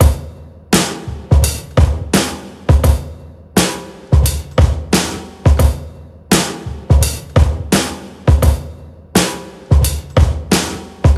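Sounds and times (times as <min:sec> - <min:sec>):
breakbeat drum loop at 86 bpm with kick drum tuned to D: 0:00.0 - 0:11.1.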